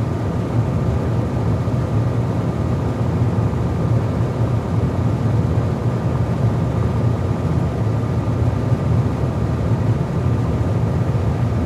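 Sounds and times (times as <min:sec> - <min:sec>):
steady hum of moving air in a ventilation room: 0:00.0 - 0:11.6.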